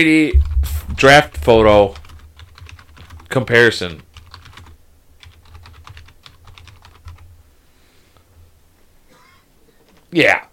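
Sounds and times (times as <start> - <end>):
speech: 0.0 - 2.0, 3.3 - 4.1, 10.1 - 10.5
low hum: 0.3 - 2.6
typing a web search on a computer keyboard: 1.4 - 7.2.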